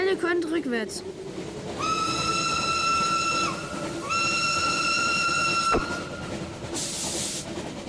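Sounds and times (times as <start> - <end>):
train rumbling on the tracks: 0.0 - 7.8
speech: 0.1 - 2.1
long loud train whistle blasts: 1.8 - 6.1.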